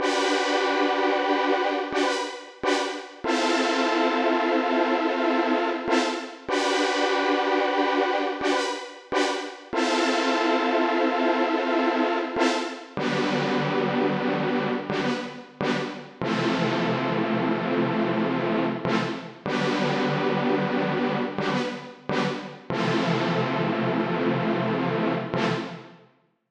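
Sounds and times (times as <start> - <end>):
synthesizer: 0.0 - 26.0.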